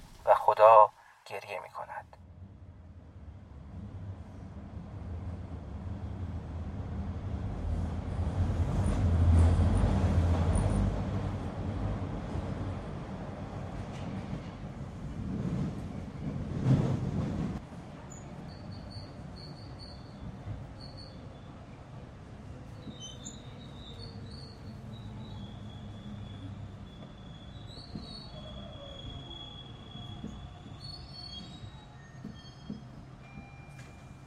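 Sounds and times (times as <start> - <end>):
metro train heading for Sadeghiyeh station rumbling: 0.0 - 34.2
speech: 0.5 - 2.2
high-pitched metro train wheel squeals: 22.8 - 32.8.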